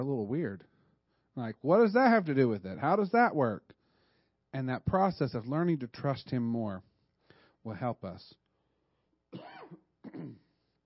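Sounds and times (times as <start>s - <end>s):
speech: 0.0s - 0.8s, 1.4s - 3.8s, 4.5s - 6.9s, 7.6s - 8.4s, 9.3s - 10.4s
coughing and throat clearing: 9.3s - 10.6s.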